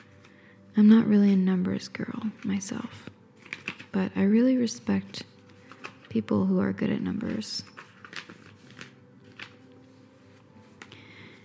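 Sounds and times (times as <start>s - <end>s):
speech: 0.8s - 3.2s, 3.9s - 5.3s, 6.1s - 7.7s
piece of paper from a box being unfolded: 2.2s - 4.1s, 4.9s - 6.2s, 7.1s - 11.4s.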